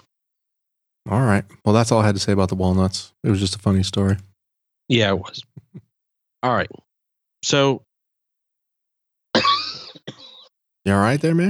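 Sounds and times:
speech: 1.1s - 4.3s, 4.9s - 5.5s, 6.4s - 6.8s, 7.4s - 7.9s, 10.8s - 11.4s
harsh cough: 9.3s - 10.5s.

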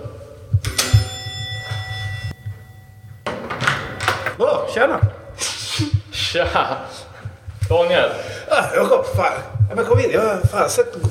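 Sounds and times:
doorbell chime: 0.6s - 4.3s
door opening with a rattle: 3.2s - 4.4s
speech: 4.4s - 7.1s, 7.7s - 11.0s.

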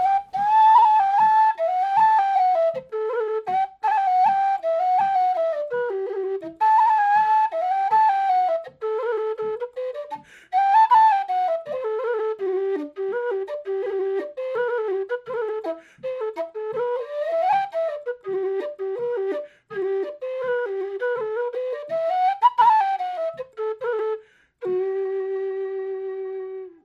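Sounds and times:
lively folk jig played solo on a tin whistle: 0.0s - 26.8s.

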